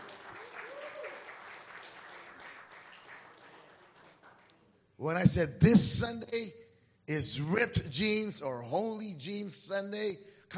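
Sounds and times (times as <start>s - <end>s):
church audience clapping: 0.0s - 4.8s
whistle or cheer from audience: 0.6s - 1.3s
speech: 5.0s - 10.5s.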